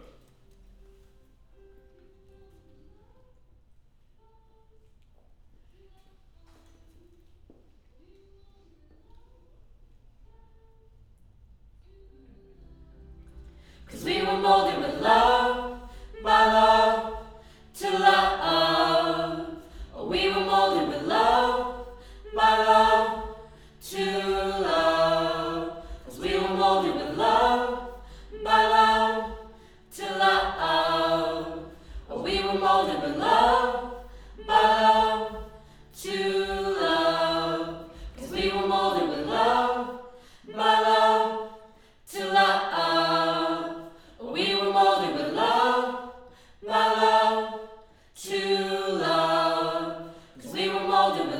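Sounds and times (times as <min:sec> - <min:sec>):
choir: 0:11.8 - 0:51.3.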